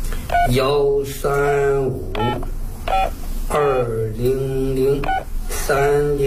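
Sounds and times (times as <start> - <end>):
telephone keypad tones while dialing a number: 0.3 - 0.6, 2.2 - 3.2, 5.0 - 5.3
person talking: 0.3 - 2.6, 3.5 - 6.2.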